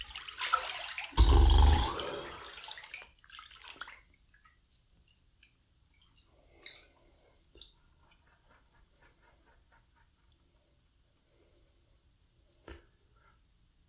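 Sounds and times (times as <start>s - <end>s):
water splashing in a bathtub while wetting hair: 0.0s - 8.2s.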